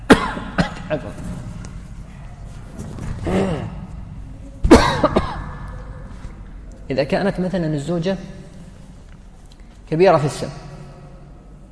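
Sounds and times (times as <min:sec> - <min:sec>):
person coughing: 0:00.0 - 0:00.9, 0:04.6 - 0:05.6
speech: 0:00.9 - 0:01.3, 0:06.9 - 0:08.4, 0:09.9 - 0:10.6.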